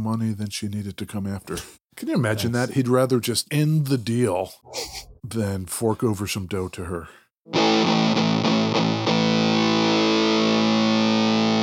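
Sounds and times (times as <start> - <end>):
speech: 0.0 - 8.1
distorted electric guitar with two humbucking pickups playing chords: 7.5 - 11.6.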